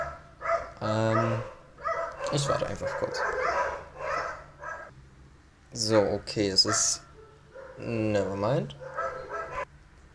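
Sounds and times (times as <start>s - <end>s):
dogs barking: 0.0s - 4.9s, 6.6s - 8.0s, 8.7s - 9.7s
speech: 0.8s - 1.5s, 2.3s - 3.6s, 5.7s - 7.1s, 7.8s - 8.9s.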